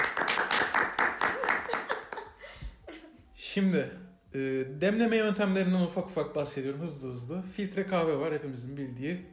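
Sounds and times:
hand clapping from a few people: 0.0s - 2.3s
laughter: 1.3s - 3.2s
speech: 3.6s - 9.3s.

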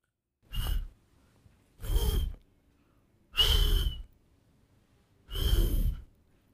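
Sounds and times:
girl blowing breathy puffs of air through rounded lips: 0.5s - 1.0s, 1.8s - 2.4s, 3.3s - 4.2s, 5.3s - 6.2s.

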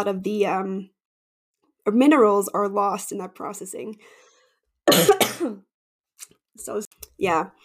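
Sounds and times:
speech: 0.0s - 1.0s, 1.8s - 4.3s, 4.9s - 7.6s
harsh coughing from a throat tickle: 4.9s - 5.6s.

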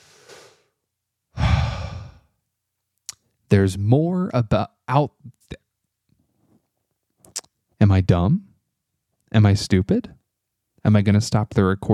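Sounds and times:
frustrated person taking a deep breath and exhaling heavily: 1.4s - 2.3s
speech: 3.5s - 5.6s, 7.8s - 8.5s, 9.3s - 10.2s, 10.8s - 11.9s.

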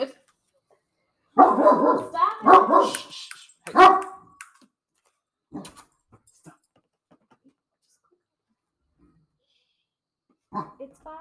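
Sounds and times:
dog barking: 1.4s - 3.1s, 3.7s - 4.3s, 10.5s - 10.8s.

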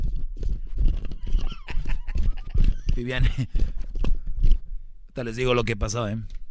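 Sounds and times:
stampede of galloping horses: 0.0s - 4.6s
laughter: 1.2s - 3.8s
speech: 3.0s - 3.8s, 5.2s - 6.4s.

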